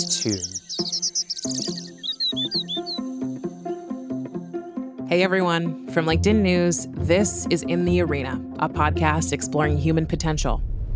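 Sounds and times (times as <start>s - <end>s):
speech: 0.0s - 1.6s, 5.2s - 10.7s
robin singing: 0.0s - 4.4s.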